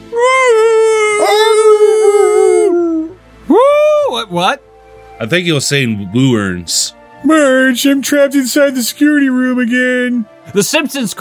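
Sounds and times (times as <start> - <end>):
dog howling: 0.2 - 3.8
speech: 4.3 - 11.1.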